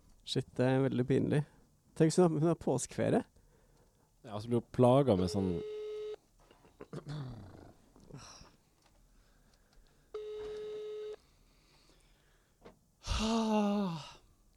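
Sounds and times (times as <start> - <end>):
speech: 0.3 - 3.3, 4.2 - 5.7, 6.9 - 7.5, 8.1 - 8.4, 13.2 - 14.1
electronic phone ringback tone: 5.2 - 6.2, 10.2 - 11.2
breathy sighs: 13.0 - 14.3.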